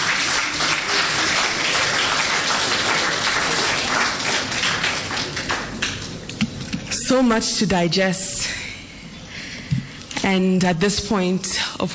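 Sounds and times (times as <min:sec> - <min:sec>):
full room of people applauding: 0:00.0 - 0:06.2
speech: 0:07.1 - 0:08.5, 0:10.3 - 0:11.9.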